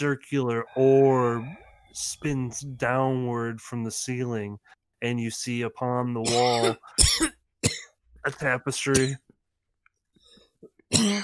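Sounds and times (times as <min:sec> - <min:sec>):
speech: 0:00.0 - 0:07.4, 0:08.2 - 0:09.2, 0:10.9 - 0:11.2
faint raspy breaths: 0:00.6 - 0:02.0
person hacking cough after taking a hit of smoke: 0:06.2 - 0:08.0, 0:10.9 - 0:11.2.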